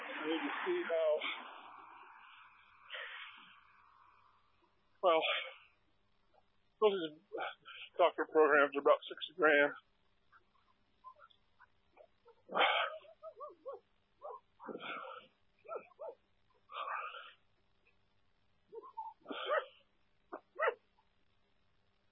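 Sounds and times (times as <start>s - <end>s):
speech: 0.2s - 1.6s, 5.0s - 5.5s, 6.8s - 9.9s, 12.5s - 13.8s
dog barking: 11.1s - 17.4s, 18.7s - 20.9s
dog yipping and whining: 12.0s - 16.2s, 18.7s - 19.8s, 20.6s - 20.8s.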